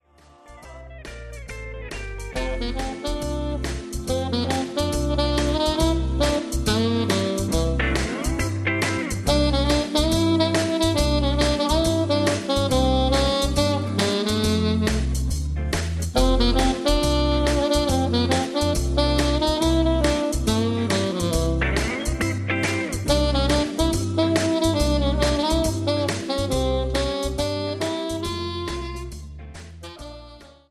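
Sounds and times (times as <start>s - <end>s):
tenor saxophone: 2.4s - 15.4s, 16.1s - 22.3s, 22.9s - 30.6s.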